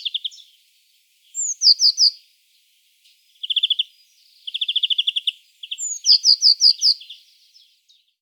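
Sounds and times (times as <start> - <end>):
Eurasian blue tit Cyanistes caeruleus calling with high notes and trills: 0.0 - 0.5, 1.3 - 2.2, 3.4 - 7.7.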